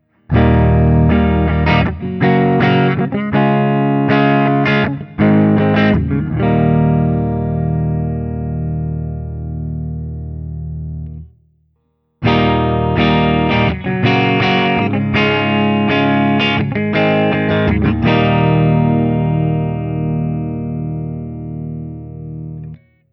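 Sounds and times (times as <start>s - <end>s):
open chords on a Crossroads Doubleneck 6 ODS100: 0.0s - 11.4s, 12.2s - 23.0s.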